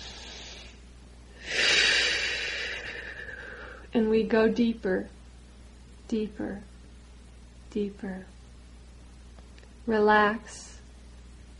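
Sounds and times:
deep airy inhalation during guided meditation: 0.0 - 3.9
speech: 3.9 - 5.2, 6.1 - 6.7, 7.7 - 8.4, 9.8 - 10.7.

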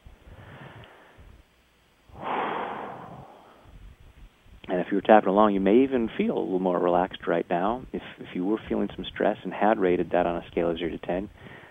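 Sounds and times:
quieter breathy sounds: 0.1 - 1.5, 2.1 - 4.0, 11.3 - 11.6
deep breath during a relaxation tapping exercise: 0.2 - 1.4, 2.1 - 3.8, 11.4 - 11.6
speech: 4.8 - 11.5.

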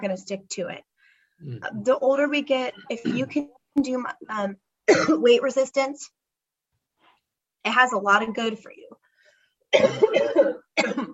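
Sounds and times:
speech: 0.0 - 6.2, 7.6 - 9.0, 9.7 - 11.1
person coughing: 3.0 - 3.4, 9.7 - 11.1.

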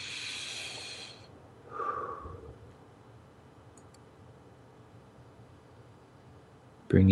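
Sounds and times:
deep breath through the nose: 0.0 - 2.7.

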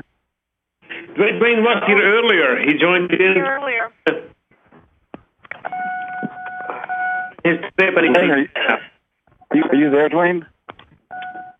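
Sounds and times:
hissy background: 0.0 - 11.5
speech: 1.2 - 4.3, 7.4 - 8.9, 9.5 - 10.5
cell phone electronic beep: 5.6 - 7.4, 11.1 - 11.5.

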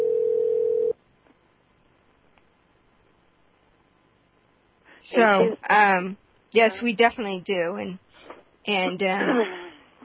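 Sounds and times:
electronic phone ringing tone: 0.0 - 1.0
speech: 5.0 - 8.0, 8.7 - 9.6.

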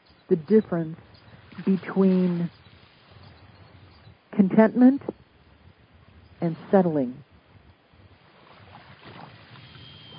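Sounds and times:
ocean ambience with low rumbling wash and soft hiss: 0.0 - 10.1
speech: 0.3 - 2.6, 4.4 - 5.2, 6.4 - 7.3.

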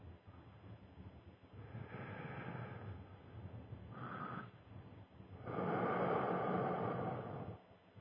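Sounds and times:
slow deep breathing in and out as a breathing exercise: 1.5 - 7.7.

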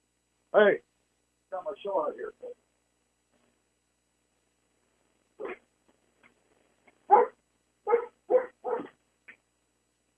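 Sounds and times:
speech: 0.5 - 0.9, 1.5 - 2.6
dog barking: 5.4 - 5.6, 7.1 - 9.0.

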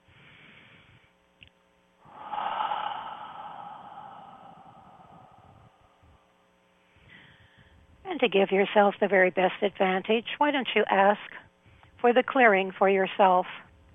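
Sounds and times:
deep cleansing breath drawn in and released: 0.0 - 1.1, 2.0 - 7.8
speech: 8.2 - 11.4, 12.0 - 13.7.

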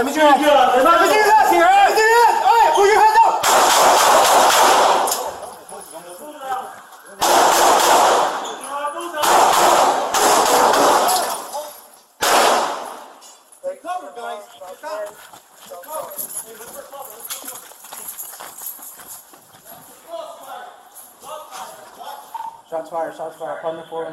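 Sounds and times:
speech: 0.0 - 3.1, 23.6 - 24.1
people shouting: 0.0 - 5.1
gunshots: 3.3 - 5.5, 7.1 - 13.2.

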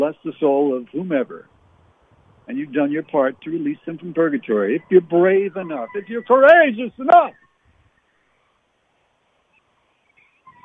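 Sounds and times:
speech: 0.0 - 1.6, 2.5 - 7.4
steady hiss of outdoor noise: 0.0 - 10.6
pack of coyotes yipping and howling far off: 4.4 - 8.7.

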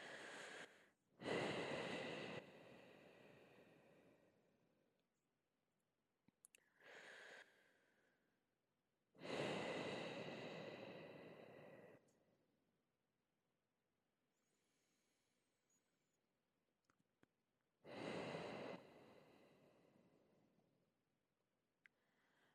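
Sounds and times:
slow deep breaths during a guided breathing exercise: 0.0 - 4.4, 6.6 - 8.2, 9.2 - 12.1, 17.9 - 20.3, 21.9 - 22.5.

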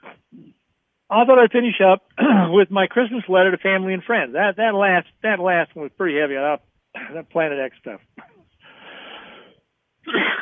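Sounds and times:
speech: 1.1 - 8.3
raspy wheezing coughing fit: 2.2 - 2.5, 7.0 - 7.2, 10.0 - 10.4.

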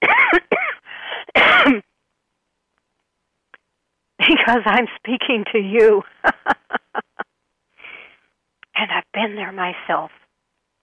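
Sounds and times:
person coughing: 0.0 - 1.8
speech: 1.6 - 1.9, 4.5 - 6.6, 9.2 - 10.2
laughter: 6.0 - 7.2.

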